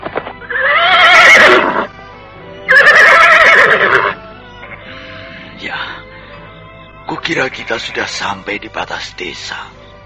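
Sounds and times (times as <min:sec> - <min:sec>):
horse whinnying at night at the edge of a village: 0:00.4 - 0:01.9, 0:02.7 - 0:04.2
speech: 0:07.3 - 0:09.8.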